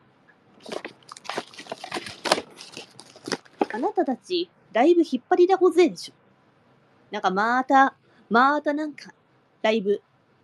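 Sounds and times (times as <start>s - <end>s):
stiff cardboard mailing envelope rustling and crackling while handled: 0.6s - 4.1s
speech: 3.8s - 6.2s, 7.1s - 10.1s.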